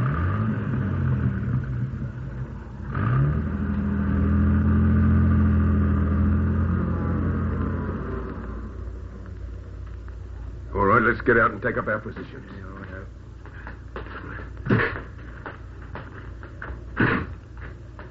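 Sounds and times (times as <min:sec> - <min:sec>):
rough old car engine rumbling and revving as it pulls away across a road: 0:00.0 - 0:09.2
speech: 0:11.1 - 0:13.2.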